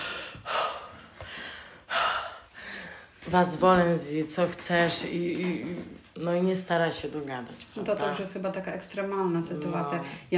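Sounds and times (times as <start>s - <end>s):
person imitating exasperated huffing breaths: 0.0s - 3.2s
speech: 3.3s - 10.3s.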